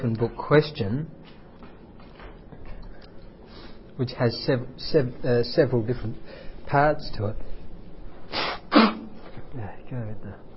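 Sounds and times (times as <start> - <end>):
speech: 0.0 - 1.3, 4.0 - 7.5, 9.6 - 10.5
person sneezing: 8.3 - 9.2.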